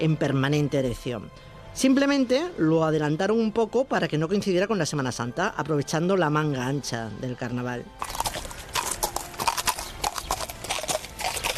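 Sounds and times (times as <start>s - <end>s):
speech: 0.0s - 8.2s
several horses galloping on hard ground: 8.0s - 11.5s.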